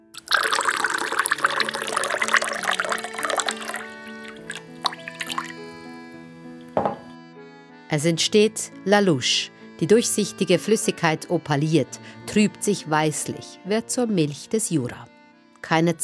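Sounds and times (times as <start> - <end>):
ice-cold water from an absinthe fountain dripping into a glass of absinthe: 0.2 - 5.9, 6.6 - 7.1
speech: 7.9 - 16.0.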